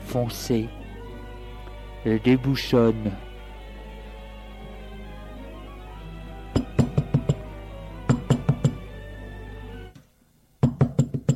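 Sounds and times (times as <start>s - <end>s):
low steady hum: 0.0s - 10.7s
speech: 0.1s - 0.8s, 2.0s - 3.3s
sharp knocking on a door: 6.6s - 7.4s, 8.1s - 8.8s, 10.6s - 11.3s.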